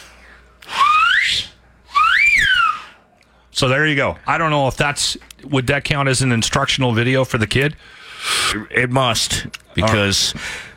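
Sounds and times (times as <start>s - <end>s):
loud shrill finger whistles: 0.6s - 3.0s
speech: 3.6s - 10.7s.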